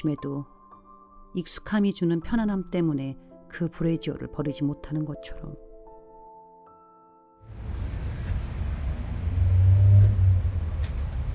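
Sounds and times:
speech: 0.0s - 0.6s, 1.3s - 5.6s
dense road traffic rumbling as vehicles begin moving: 7.5s - 11.3s.

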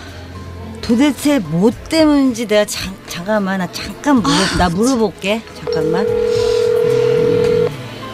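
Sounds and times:
speech: 0.8s - 6.6s
steady electronic telephone tone of a call failing to connect: 5.7s - 7.8s.

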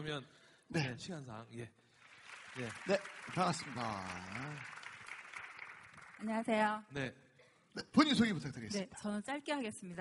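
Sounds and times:
speech: 0.0s - 1.9s, 2.6s - 4.8s, 6.2s - 9.9s
audience applause: 1.9s - 6.7s.

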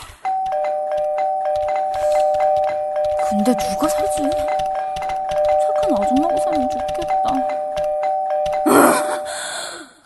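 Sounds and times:
electronic doorbell ringing: 0.2s - 9.3s
speech: 3.4s - 4.0s.

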